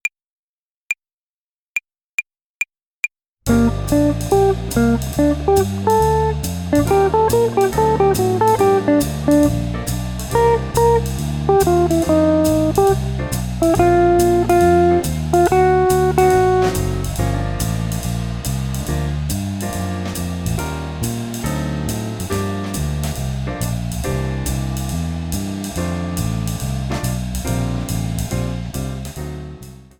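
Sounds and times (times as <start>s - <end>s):
jazz guitar playing swing phrasing over a play-along: 3.5s - 29.6s.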